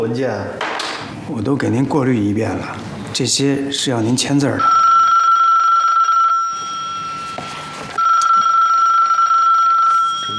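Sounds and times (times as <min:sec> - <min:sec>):
speech: 0:00.0 - 0:05.0
telephone ringing in a provincial government office: 0:04.6 - 0:10.3.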